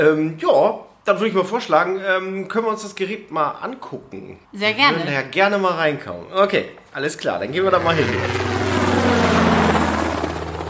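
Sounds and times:
speech: 0:00.0 - 0:08.6
large helicopter rotor and engine running in a hangar: 0:07.6 - 0:10.6.

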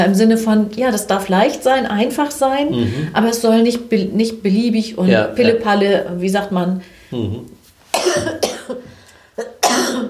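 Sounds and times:
speech: 0:00.0 - 0:08.8
harsh coughs: 0:07.9 - 0:10.0.

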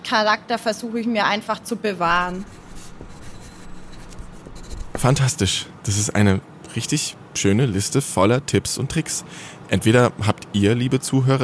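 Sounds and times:
speech: 0:00.1 - 0:02.6, 0:05.0 - 0:11.4
handwriting notes scratching: 0:02.0 - 0:05.4.

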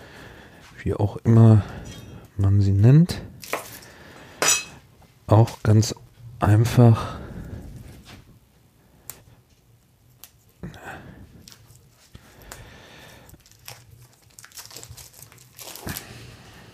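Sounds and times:
speech: 0:00.8 - 0:03.3, 0:05.3 - 0:07.2
plastic wrapping crinkled off a plain salad cucumber: 0:11.4 - 0:16.3.

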